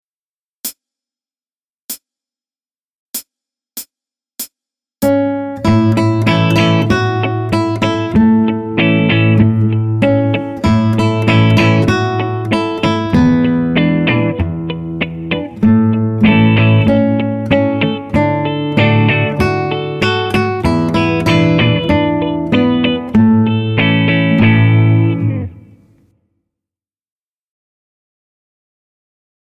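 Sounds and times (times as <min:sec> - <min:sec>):
guitar playing an American folk song: 0:05.1 - 0:25.8.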